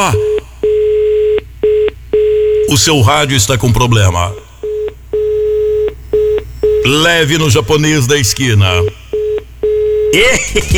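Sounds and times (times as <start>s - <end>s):
speech: 0.0s - 0.3s, 2.7s - 4.4s, 6.8s - 9.0s, 10.1s - 10.7s
electronic telephone beeps: 0.0s - 2.9s, 4.6s - 7.5s, 8.7s - 10.3s.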